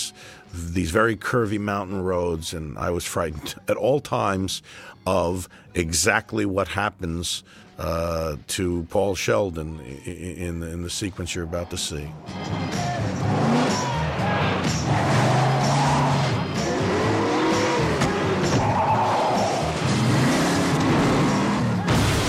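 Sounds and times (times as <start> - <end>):
speech: 0.5 - 13.9
car tires squealing in a skid on a snowy road: 12.2 - 21.9
loud car engine roar: 12.2 - 22.1.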